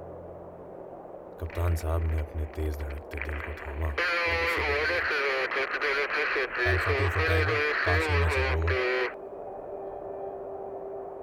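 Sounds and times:
speech: 0:01.4 - 0:09.0
crackling military wireless radio transmission: 0:01.4 - 0:09.2.

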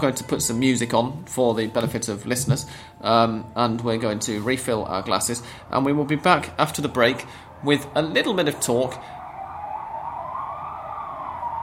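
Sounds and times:
speech: 0:00.0 - 0:09.2
police car sirens passing: 0:05.3 - 0:11.6.

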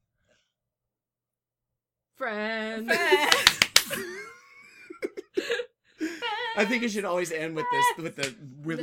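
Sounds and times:
speech: 0:02.2 - 0:03.4, 0:06.6 - 0:08.8
laughter: 0:02.9 - 0:07.0
sharp harsh staccato hand claps: 0:03.2 - 0:04.2, 0:08.2 - 0:08.4.

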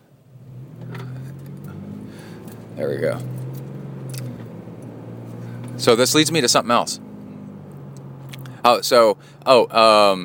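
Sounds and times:
traffic noise: 0:00.0 - 0:10.2
car accelerating: 0:00.2 - 0:10.2
speech: 0:02.8 - 0:03.4, 0:05.8 - 0:07.0, 0:08.6 - 0:10.2.

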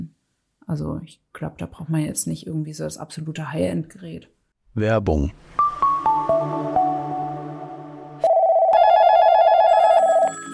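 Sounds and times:
speech: 0:00.7 - 0:07.0
descending chime notes: 0:05.6 - 0:09.0
electronic telephone ring: 0:08.2 - 0:10.5.

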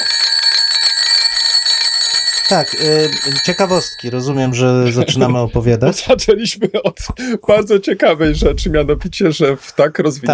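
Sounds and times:
phone ringing with a bright trilling electronic tone: 0:00.0 - 0:06.4
speech: 0:02.5 - 0:10.3
laughter: 0:04.5 - 0:08.9.

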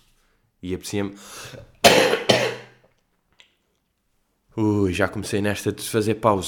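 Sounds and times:
speech: 0:00.6 - 0:02.2, 0:04.6 - 0:06.4
person coughing: 0:01.8 - 0:02.8
throat clearing rasp: 0:01.8 - 0:02.8.

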